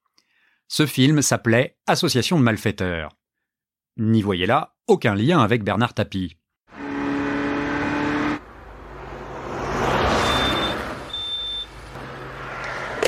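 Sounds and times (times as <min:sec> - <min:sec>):
speech: 0:00.7 - 0:03.2, 0:04.0 - 0:06.8
red Ferrari Testarossa engine speeding along a motorway: 0:06.7 - 0:13.0
short high beeps: 0:10.2 - 0:11.7.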